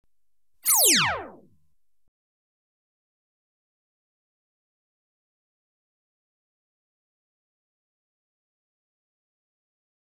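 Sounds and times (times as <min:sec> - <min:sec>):
electronically generated hand phaser weapon single shot: 0:00.7 - 0:01.5.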